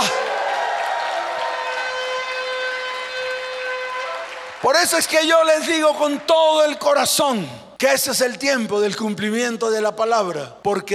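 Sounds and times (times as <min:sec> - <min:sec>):
large crowd applauding and shouting: 0:00.0 - 0:07.2
speech: 0:04.7 - 0:10.9.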